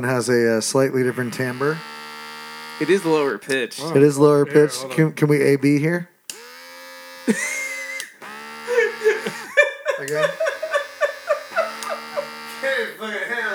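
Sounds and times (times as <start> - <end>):
speech: 0.0 - 2.0, 2.8 - 6.1, 7.3 - 7.6, 10.0 - 10.5
electric body shaver buzzing: 0.9 - 4.1, 6.3 - 13.5
people laughing: 7.3 - 13.5.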